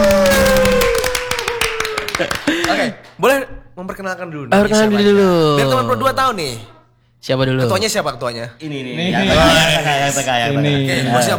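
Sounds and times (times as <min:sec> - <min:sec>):
laughter: 0:00.0 - 0:03.1, 0:08.7 - 0:11.3
people clapping hands in a studio: 0:00.0 - 0:03.4
speech: 0:03.2 - 0:11.3.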